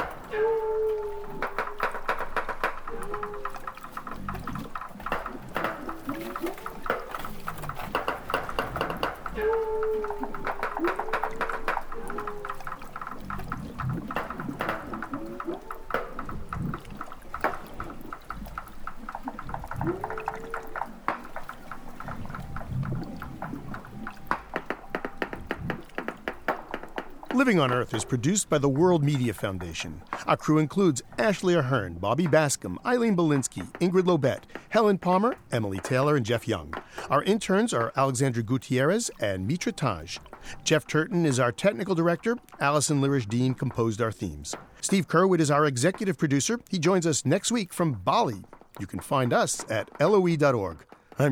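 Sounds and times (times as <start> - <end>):
walruses knocking clicks and taps underwater: 0.0 - 51.2
speech: 27.4 - 51.2.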